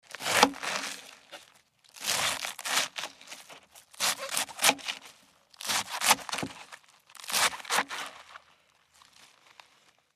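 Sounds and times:
knife slicing cabbage: 0.1 - 1.1, 2.0 - 8.2.

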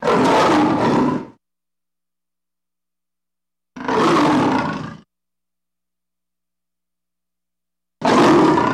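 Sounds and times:
lion roaring: 0.0 - 1.4, 3.8 - 5.1, 8.0 - 8.7.

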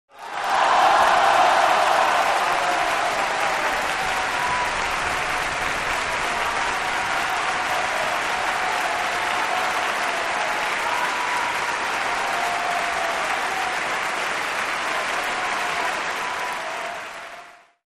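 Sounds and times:
concert crowd applauding at end of show: 0.1 - 17.8.

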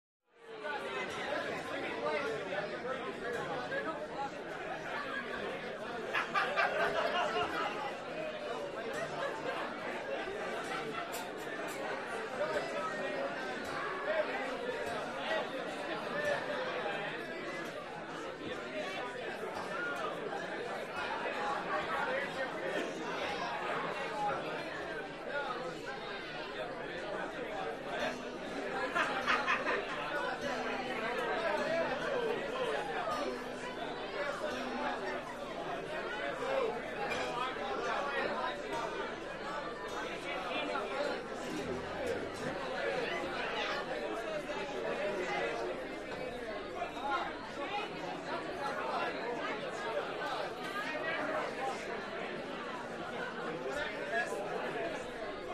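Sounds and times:
American bar chatter: 0.3 - 55.5
laughter: 4.6 - 11.6, 26.6 - 45.7.

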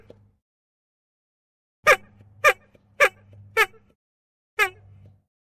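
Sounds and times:
Ford Model T bulb horn honk: 1.9 - 3.9, 4.6 - 5.1.

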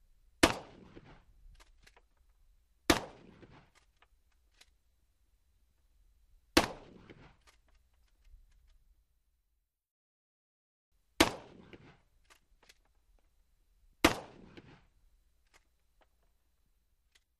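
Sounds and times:
12 gauge shotgun shots: 0.4 - 1.3, 2.9 - 3.8, 6.6 - 7.4, 11.2 - 12.1, 14.0 - 14.9.

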